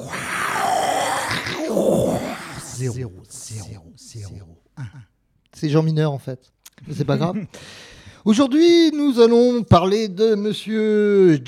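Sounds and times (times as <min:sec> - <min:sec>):
man imitating a studio logo lion roar: 0:00.0 - 0:05.0
speech: 0:02.8 - 0:11.4.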